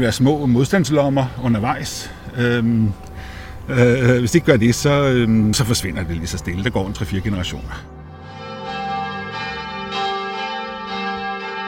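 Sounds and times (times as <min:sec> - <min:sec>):
speech: 0:00.0 - 0:03.1, 0:03.7 - 0:08.0
church bells ringing in overlapping peals: 0:04.1 - 0:11.6.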